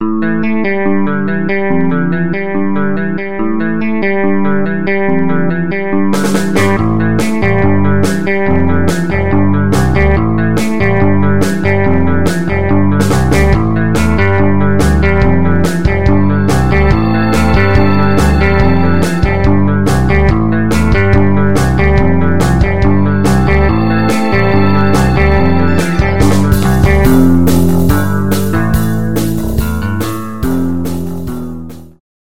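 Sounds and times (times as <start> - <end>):
clean electric guitar: 0.0 - 32.0
organ: 13.1 - 29.0.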